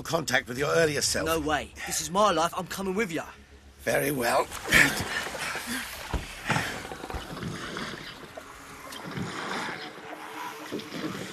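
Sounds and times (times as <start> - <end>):
speech: 0.0 - 5.9
broad wash of open-water noise: 2.7 - 11.3
oars splashing and pulling through water while rowing a boat: 4.2 - 11.3.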